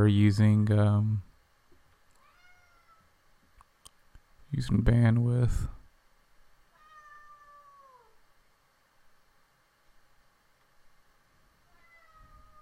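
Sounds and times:
speech: 0:00.0 - 0:01.3, 0:04.5 - 0:05.8
cat meowing: 0:02.2 - 0:03.1, 0:06.7 - 0:08.2, 0:11.7 - 0:12.6.

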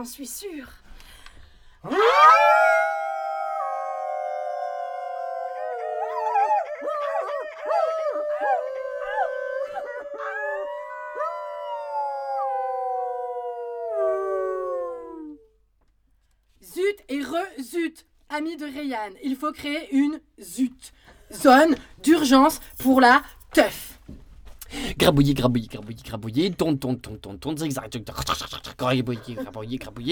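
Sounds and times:
speech: 0:00.0 - 0:00.8, 0:01.8 - 0:02.6, 0:17.8 - 0:23.9, 0:24.8 - 0:30.1
people howling like wolves: 0:01.8 - 0:15.6.

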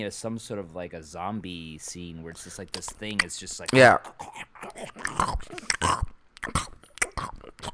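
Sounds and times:
speech: 0:00.0 - 0:06.7
loud wet chewing of a burger in class: 0:02.5 - 0:07.7.

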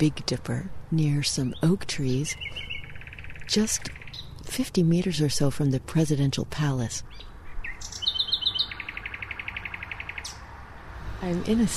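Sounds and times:
speech: 0:00.0 - 0:02.7, 0:03.5 - 0:08.0, 0:11.2 - 0:11.7
quiet outdoor hum at night in Berlin's Tiergarten: 0:00.0 - 0:11.7
nightingale singing at night near oak trees in Berlin's Tiergarten: 0:01.0 - 0:05.1, 0:06.8 - 0:10.5.

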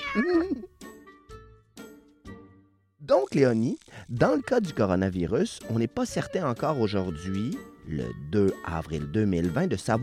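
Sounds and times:
cat meowing: 0:00.0 - 0:00.7
speech: 0:00.1 - 0:00.8, 0:03.1 - 0:10.0.

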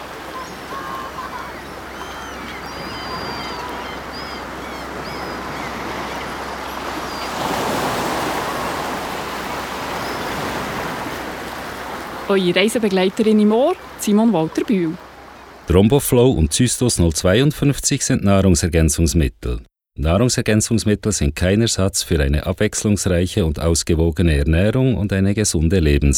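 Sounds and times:
ocean waves rushing: 0:00.0 - 0:16.7
faint bird chirps: 0:00.3 - 0:07.4
speech: 0:12.3 - 0:15.0, 0:15.7 - 0:26.1.

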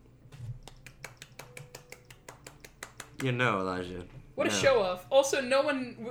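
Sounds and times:
crisp snappy one-handed clap: 0:00.6 - 0:03.4
speech: 0:03.2 - 0:06.0.

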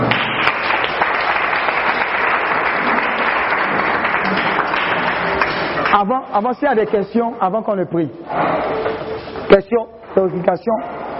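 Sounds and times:
church congregation applauding during a service: 0:00.0 - 0:06.4
speech: 0:06.0 - 0:11.0.

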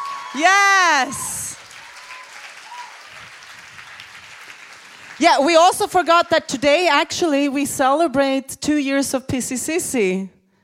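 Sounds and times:
audience applause: 0:00.0 - 0:05.5
speech: 0:00.3 - 0:01.3, 0:05.2 - 0:10.4.

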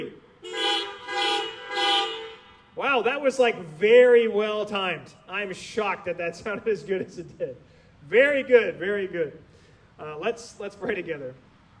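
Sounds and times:
several car horns honking together: 0:00.4 - 0:02.7
speech: 0:03.0 - 0:11.5.

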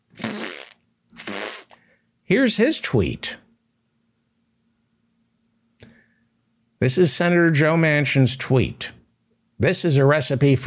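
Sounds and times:
wet fart noises: 0:00.1 - 0:01.8
speech: 0:02.3 - 0:03.4, 0:06.8 - 0:09.0, 0:09.6 - 0:10.6.

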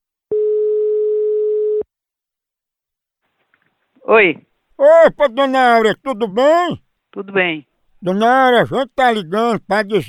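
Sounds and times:
ringback tone on an outgoing telephone call: 0:00.3 - 0:01.8
speech: 0:04.1 - 0:10.0.

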